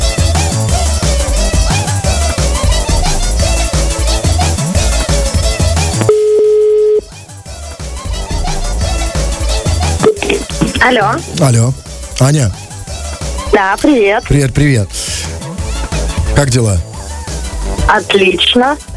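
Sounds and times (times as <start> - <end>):
loud music: 0.0 - 18.9
telephone ringback tone while calling someone: 6.0 - 7.2
speech: 10.8 - 12.6, 13.6 - 15.0, 16.4 - 16.9, 17.9 - 18.9.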